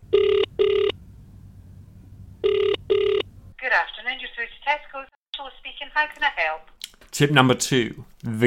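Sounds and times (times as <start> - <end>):
faint phone line hum: 0.0 - 6.1
double-burst telephone ringback tone of a dialed sales call: 0.1 - 1.0, 2.4 - 3.2
speech: 6.0 - 8.4.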